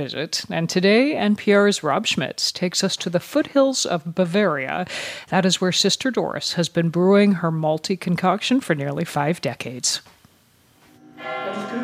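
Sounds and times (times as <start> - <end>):
speech: 0.0 - 10.1
church bells striking eleven in the Bavarian foothills: 11.0 - 11.8.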